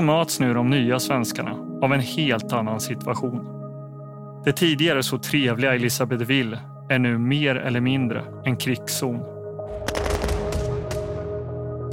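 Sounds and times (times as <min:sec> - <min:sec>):
speech: 0:00.0 - 0:03.6, 0:04.4 - 0:10.0
automatic gunfire: 0:09.9 - 0:10.8.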